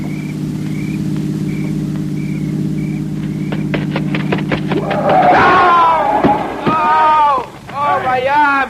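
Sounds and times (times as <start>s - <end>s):
car engine humming: 0.0s - 8.6s
sharp clatter: 3.1s - 7.8s
loud agitated voices: 4.7s - 8.6s.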